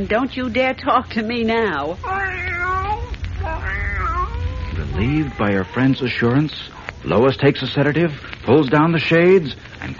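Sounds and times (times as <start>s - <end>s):
speech: 0.0s - 2.6s, 5.0s - 9.9s
cat meowing in long wavering cries: 2.0s - 6.3s.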